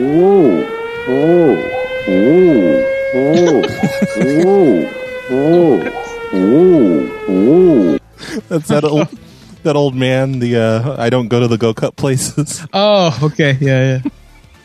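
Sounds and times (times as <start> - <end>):
electronic siren-style alarm played from a device: 0.0 - 8.0
laughter: 3.3 - 4.8, 5.5 - 6.2, 8.2 - 9.2
speech: 8.5 - 14.2.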